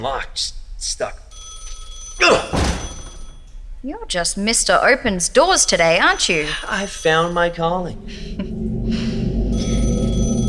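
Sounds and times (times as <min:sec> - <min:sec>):
speech: 0:00.0 - 0:01.2, 0:02.2 - 0:02.8, 0:03.8 - 0:09.1
phone ringing with bright electronic tones: 0:01.3 - 0:03.5, 0:05.3 - 0:08.0, 0:09.5 - 0:10.4
constant low droning musical bed: 0:07.6 - 0:10.4.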